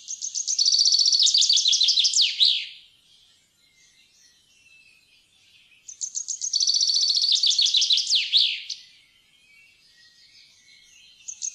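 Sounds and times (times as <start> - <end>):
common chaffinch song with descending trilled phrases: 0.0 - 11.5.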